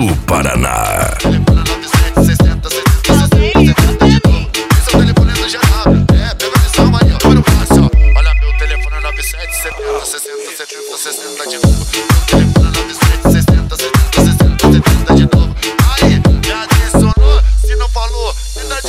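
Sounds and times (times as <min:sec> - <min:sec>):
loud pounding bass beat: 0:00.0 - 0:09.9, 0:11.6 - 0:18.8
speech: 0:00.1 - 0:01.7
steady high beep: 0:07.9 - 0:11.0
ringtone-style electronic melody: 0:07.9 - 0:11.2.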